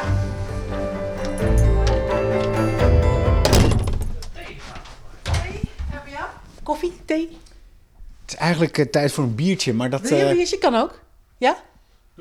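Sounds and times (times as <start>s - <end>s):
shuffling movement: 0.3s - 12.1s
front door shutting with a solid thunk: 1.2s - 6.0s
brief rattle: 3.4s - 5.8s
speech: 8.4s - 12.1s.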